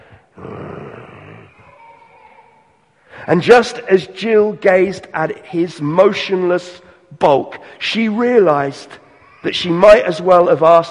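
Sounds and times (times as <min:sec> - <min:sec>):
lion growling: 0:00.4 - 0:01.6
speech: 0:03.2 - 0:10.8.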